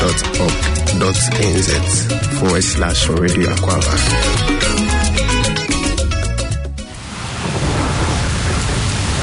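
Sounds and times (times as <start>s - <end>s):
speech: 0.0s - 5.3s
music: 0.0s - 7.0s
heavy rain roaring in a thunderstorm: 6.9s - 9.2s.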